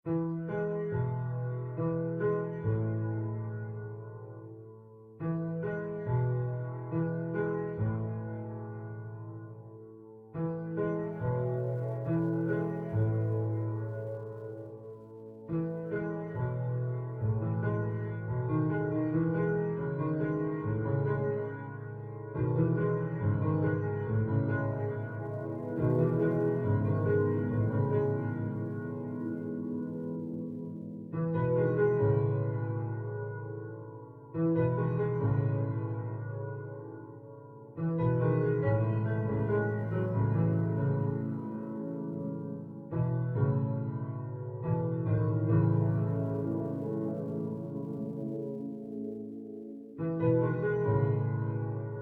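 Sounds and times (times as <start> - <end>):
ambient music: 0.1 - 52.0.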